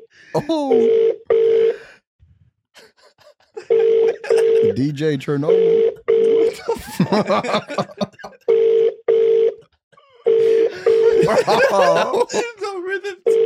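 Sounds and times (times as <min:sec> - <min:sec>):
speech: 0:00.4 - 0:01.2, 0:04.6 - 0:05.9, 0:06.8 - 0:08.1, 0:11.3 - 0:13.2
people talking and laughing: 0:02.8 - 0:05.0, 0:06.4 - 0:08.4, 0:10.7 - 0:13.2
hotel telephone ringing: 0:03.7 - 0:09.6, 0:10.3 - 0:12.3, 0:13.3 - 0:13.4.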